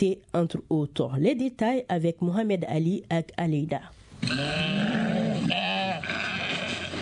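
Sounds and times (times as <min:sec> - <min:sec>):
speech: 0:00.0 - 0:06.2
sheep bleating at a livestock market in Bamako Mali: 0:04.2 - 0:07.0.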